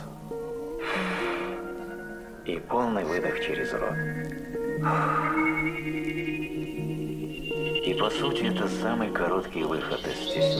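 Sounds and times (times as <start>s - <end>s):
soft sustained musical drone: 0.0s - 10.5s
strong breathy inhale through the nose: 0.8s - 1.6s
speech: 2.4s - 6.4s, 8.0s - 10.5s.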